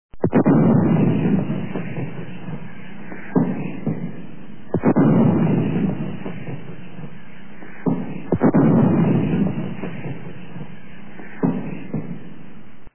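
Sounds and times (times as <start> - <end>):
155mm artillery gun firing: 0.2 - 2.7, 3.4 - 7.1, 7.8 - 10.8.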